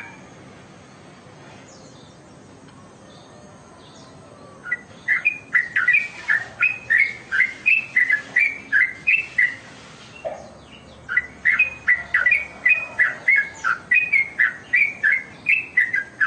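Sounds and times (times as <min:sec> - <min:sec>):
Oriental magpie-robin singing short clear whistled notes: 0:03.1 - 0:16.2.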